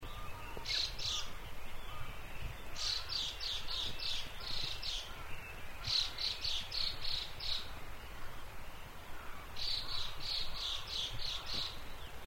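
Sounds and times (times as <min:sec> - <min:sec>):
Chinese hwamei calling: 0:00.0 - 0:12.2.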